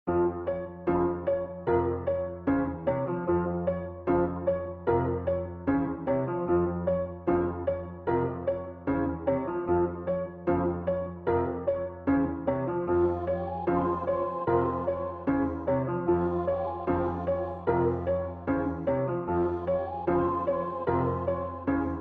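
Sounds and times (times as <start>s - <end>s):
piano keys in F minor: 0.1s - 21.9s
vocal: 12.9s - 21.9s.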